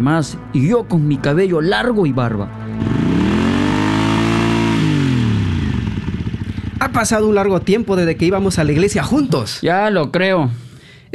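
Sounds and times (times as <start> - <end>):
speech: 0.0 - 3.3, 7.0 - 11.1
Harley motorcycles riding off, engines revving: 2.7 - 9.5.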